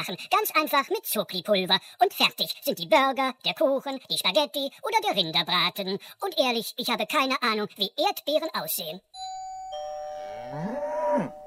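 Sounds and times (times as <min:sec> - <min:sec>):
speech: 0:00.0 - 0:09.3, 0:10.5 - 0:11.4
cow mooing: 0:10.4 - 0:11.4.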